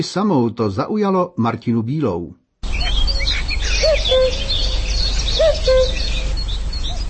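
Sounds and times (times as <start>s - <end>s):
speech: 0.0s - 2.4s
common cuckoo calling: 2.6s - 7.0s
smaller birds chirping and twittering outdoors: 2.6s - 7.0s.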